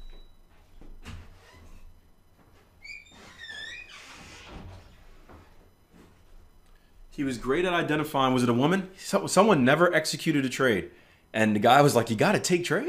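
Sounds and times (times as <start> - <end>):
door hinge creaking: 2.8 - 5.0
speech: 7.2 - 12.8.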